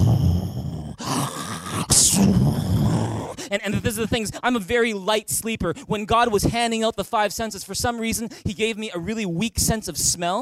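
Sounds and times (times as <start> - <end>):
voice imitating a friend's loud snoring: 0.0 - 3.5
speech: 2.2 - 10.3.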